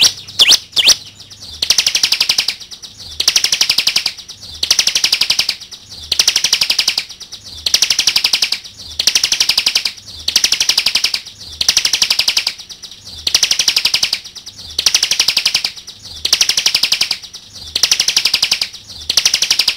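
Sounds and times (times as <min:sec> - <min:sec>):
bar-winged prinia song of high buzzy rapid trills: 0:00.0 - 0:19.7.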